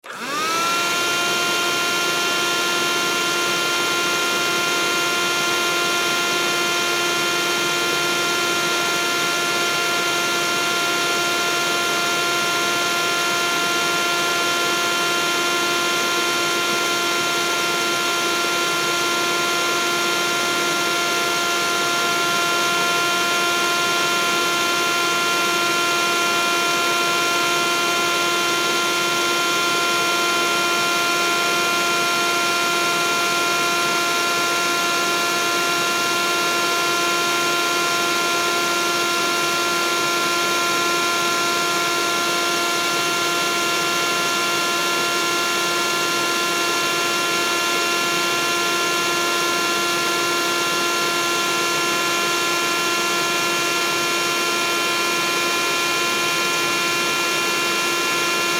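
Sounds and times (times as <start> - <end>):
hand held vacuum with attachment switched on, running and off: 0.0 - 58.5.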